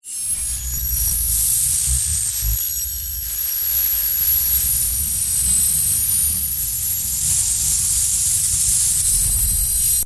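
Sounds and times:
complex magnetic sci-fi electric discharge: 0.3s - 10.0s.

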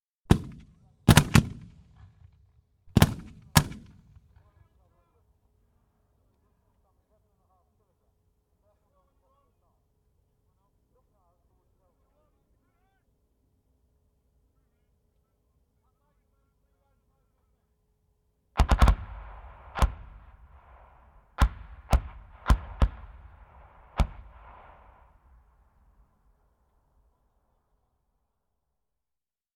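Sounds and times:
81mm medium mortar firing high explosive charges: 0.3s - 4.4s, 18.6s - 25.5s
high explosive mortar charge explosions: 3.0s - 4.1s, 18.6s - 25.5s.

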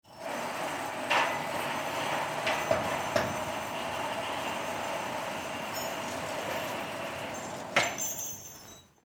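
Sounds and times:
grand stage curtain opening in a theatre: 0.2s - 8.9s.

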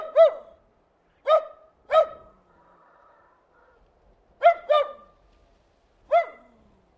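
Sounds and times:
terrier barking: 0.0s - 0.6s, 1.2s - 2.4s, 4.4s - 5.2s, 6.1s - 6.6s.

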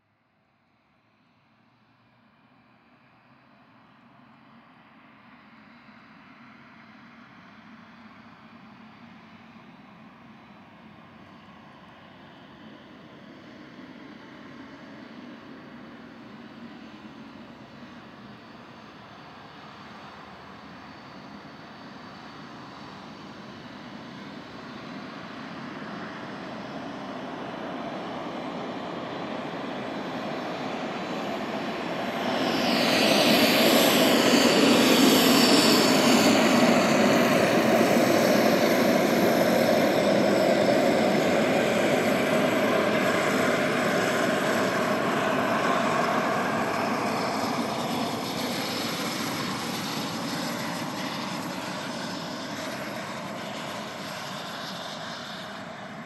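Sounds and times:
transportation jet aircraft taxiing past: 4.1s - 56.0s.

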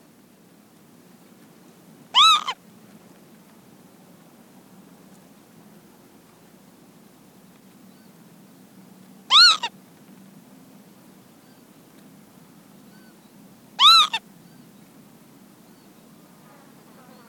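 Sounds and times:
female Northern lapwing giving anxiety calls on the ground: 2.1s - 2.6s, 9.3s - 9.8s, 13.8s - 14.2s.

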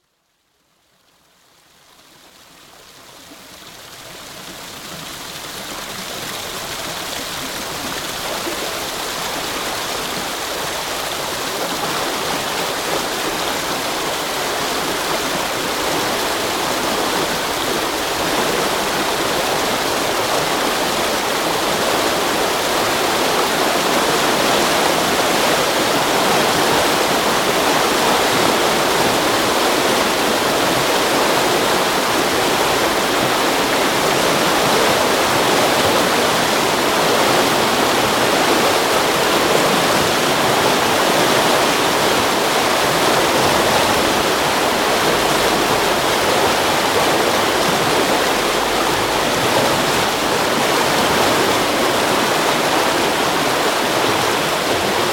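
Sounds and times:
river lock filling on the River Thames: 0.2s - 55.1s.

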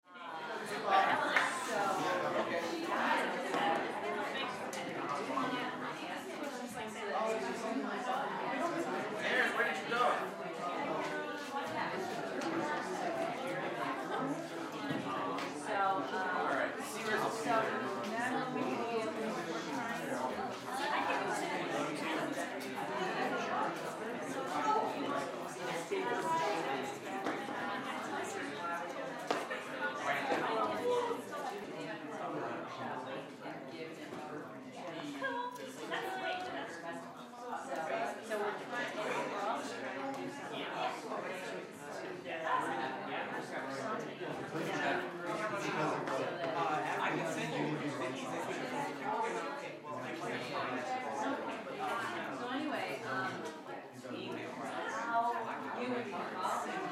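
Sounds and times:
teens in casual conversation in a classroom: 0.0s - 56.9s.

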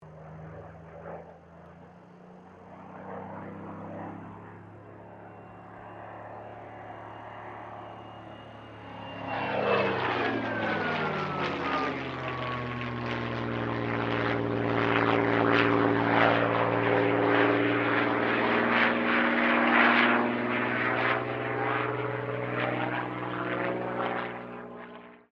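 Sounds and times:
Supermarine Spitfire Mk XVI aircraft engine: 0.0s - 25.3s.

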